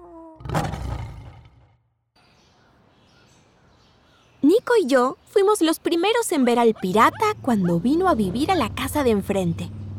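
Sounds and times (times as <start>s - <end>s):
person imitating a lion's roar: 0.0s - 1.7s
speech: 4.7s - 9.8s.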